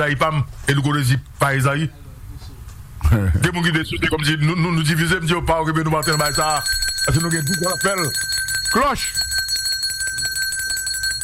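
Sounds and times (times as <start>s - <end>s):
speech: 0.0s - 2.0s, 3.1s - 9.2s
bright bell ring: 6.0s - 11.2s.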